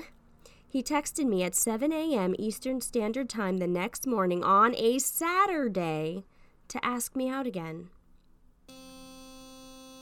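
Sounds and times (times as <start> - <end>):
speech: 0.7 - 8.0
vibrator buzzing: 8.7 - 10.0.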